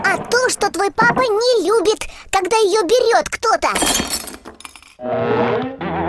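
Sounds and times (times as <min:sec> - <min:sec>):
speech: 0:00.7 - 0:04.3, 0:05.0 - 0:05.7
ceramic mug falling and shattering: 0:03.8 - 0:05.0.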